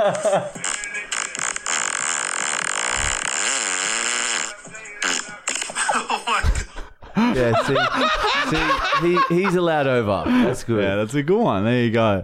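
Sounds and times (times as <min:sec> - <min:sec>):
speech: 0:00.0 - 0:00.7, 0:07.2 - 0:12.2
laughter: 0:00.0 - 0:01.0, 0:05.5 - 0:10.8
long loud harsh fart in a played recording: 0:01.2 - 0:05.2.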